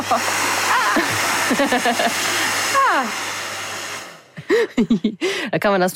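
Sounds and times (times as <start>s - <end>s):
corded hair dryer blowing warm air on food: 0.0s - 5.4s
speech: 0.1s - 0.4s, 1.5s - 3.3s, 4.5s - 5.9s.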